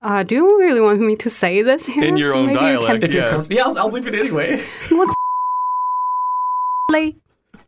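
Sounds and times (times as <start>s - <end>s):
speech: 0.0s - 5.2s, 7.0s - 7.2s
laughter: 2.0s - 5.2s
censor bleep tone covering a spoken swear word: 5.1s - 7.0s.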